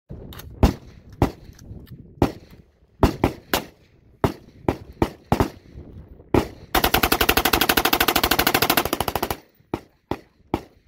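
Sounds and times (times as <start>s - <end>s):
M4 carbine gunshots: 2.2s - 5.7s, 6.3s - 10.8s.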